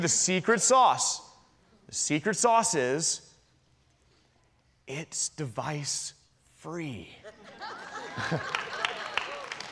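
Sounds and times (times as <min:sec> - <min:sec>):
speech: 0:00.0 - 0:01.3, 0:01.9 - 0:03.3, 0:04.9 - 0:08.6
laughter: 0:07.2 - 0:09.5
audience applause: 0:08.2 - 0:09.7.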